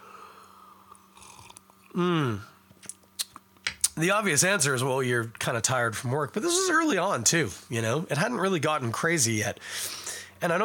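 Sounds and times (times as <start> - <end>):
steady low hum: 0.0 - 10.6
person sipping beer: 0.1 - 3.0
speech: 2.0 - 2.5, 4.0 - 10.6.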